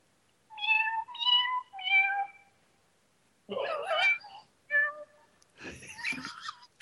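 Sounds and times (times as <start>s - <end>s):
cat meowing: 0.6s - 2.5s, 3.5s - 5.2s
laughter: 5.6s - 6.7s.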